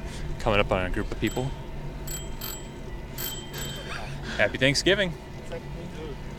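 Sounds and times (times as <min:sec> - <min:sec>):
low rumble of outdoor noise in a park: 0:00.0 - 0:06.3
speech: 0:00.4 - 0:01.6, 0:04.4 - 0:06.3
bicycle bell rung while riding slowly through a park: 0:01.2 - 0:04.2.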